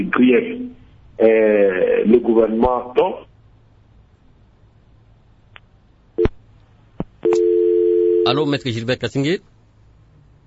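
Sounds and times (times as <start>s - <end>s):
speech: 0.0s - 3.3s, 8.3s - 9.5s
telephone busy tone after a dropped call: 7.2s - 8.3s.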